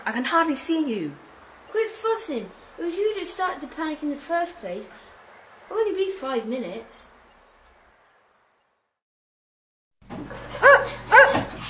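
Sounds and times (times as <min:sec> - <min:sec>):
speech: 0:00.0 - 0:05.1, 0:05.7 - 0:07.1
dog barking excitedly: 0:10.2 - 0:11.6.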